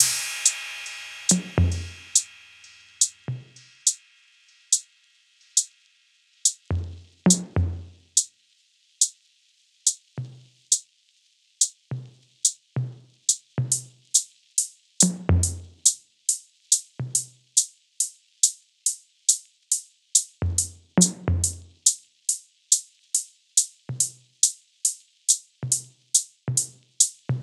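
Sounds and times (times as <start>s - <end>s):
percussion loop: 0.0s - 4.8s, 6.5s - 8.2s, 15.0s - 16.0s, 20.2s - 22.0s, 25.3s - 27.4s.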